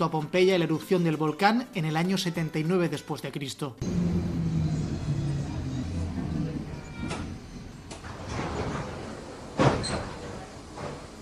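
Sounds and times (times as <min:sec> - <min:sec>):
speech: 0:00.0 - 0:04.2
crowded commuter train doors sliding open from Naples to Herculaneum: 0:03.8 - 0:11.1.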